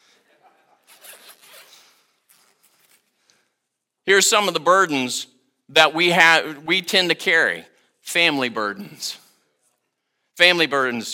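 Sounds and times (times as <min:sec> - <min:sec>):
bag zipper being pulled open: 0:00.8 - 0:03.1
speech: 0:04.1 - 0:09.2, 0:10.4 - 0:11.1.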